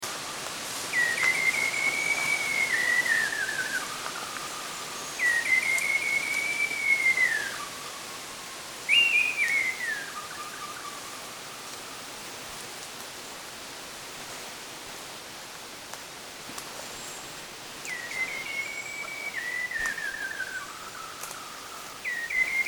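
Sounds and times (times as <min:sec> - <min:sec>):
White-browed Shama in Subic: 0:00.9 - 0:08.2, 0:08.9 - 0:11.7, 0:17.8 - 0:22.6.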